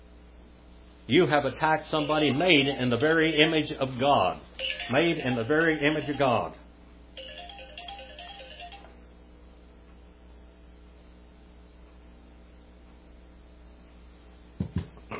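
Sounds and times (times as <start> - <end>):
speech: 1.1 - 6.6
phone ringtone electronic melody: 4.6 - 6.5, 7.2 - 8.9.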